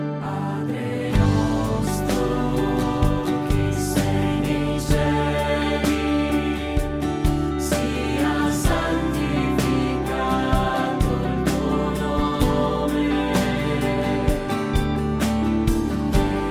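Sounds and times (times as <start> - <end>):
alto and tenor voices singing a prayer in Italian: 0.2 - 16.4.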